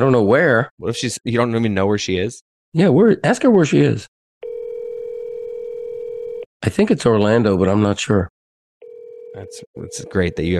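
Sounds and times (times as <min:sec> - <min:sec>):
speech: 0:00.0 - 0:04.2, 0:06.6 - 0:08.3, 0:09.3 - 0:10.5
telephone dial tone while placing a call: 0:04.4 - 0:06.5, 0:08.8 - 0:10.5.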